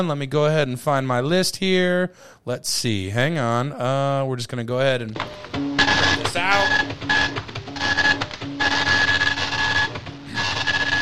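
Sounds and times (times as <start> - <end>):
speech: 0.0 - 7.5
old printer printing a page: 5.2 - 11.0.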